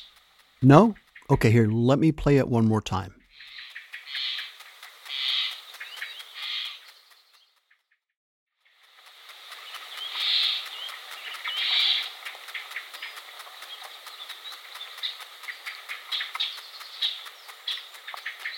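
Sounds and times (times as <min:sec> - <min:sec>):
speech: 0:00.6 - 0:03.2
sap rising inside a tree: 0:03.3 - 0:07.3, 0:08.6 - 0:18.5.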